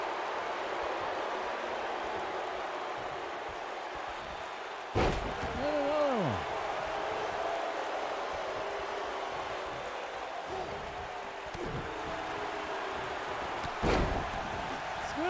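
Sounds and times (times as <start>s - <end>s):
large crowd roar: 0.0s - 15.2s
heavy body slams onto a wrestling mat from suplexes: 5.0s - 5.5s.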